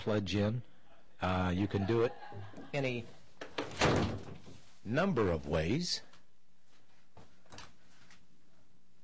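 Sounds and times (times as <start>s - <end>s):
speech: 0.0s - 3.2s, 3.8s - 6.1s
laughter: 1.6s - 3.0s
door slamming shut: 3.6s - 4.5s.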